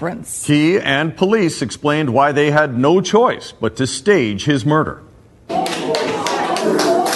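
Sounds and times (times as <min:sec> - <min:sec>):
speech: 0:00.0 - 0:06.0
excited murmuring voices: 0:05.5 - 0:07.1
roomful of people applauding at a news conference: 0:05.5 - 0:07.1.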